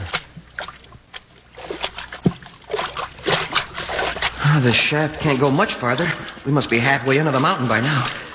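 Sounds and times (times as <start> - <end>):
footsteps wading through shallow water: 0.0 - 8.3
speech: 4.5 - 8.2.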